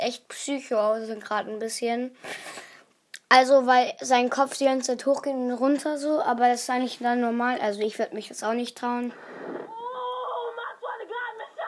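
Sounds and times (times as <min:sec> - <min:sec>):
speech: 0:00.0 - 0:02.6, 0:03.3 - 0:09.3
excited girl screaming and squealing: 0:09.6 - 0:11.6.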